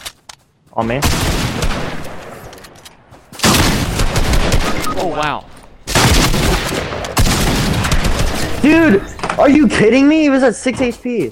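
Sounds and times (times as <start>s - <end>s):
speech: 0.8s - 1.6s, 5.0s - 5.5s, 8.6s - 11.3s
video game gunfire: 1.0s - 2.2s, 3.4s - 4.9s, 5.9s - 9.0s.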